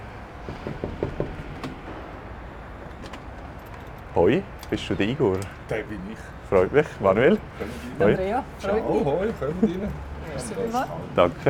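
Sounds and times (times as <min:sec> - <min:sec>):
knocking on an office door at a recycling yard in Zürich-Affoltern: 0:00.4 - 0:02.0
speech: 0:00.5 - 0:01.0, 0:04.2 - 0:11.4.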